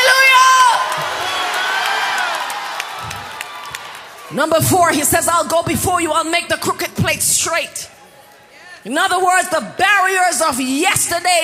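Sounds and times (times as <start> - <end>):
large crowd screaming and cheering: 0.0 - 4.4
speech: 4.3 - 8.0, 8.8 - 11.4.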